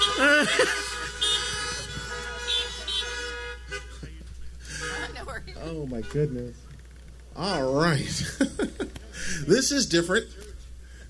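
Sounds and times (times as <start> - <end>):
laughter: 0.0 - 5.2, 7.9 - 9.5
many car horns honking from worshippers' cars during a church service: 0.0 - 6.6
speech: 0.5 - 1.0, 5.9 - 6.7, 7.4 - 10.4.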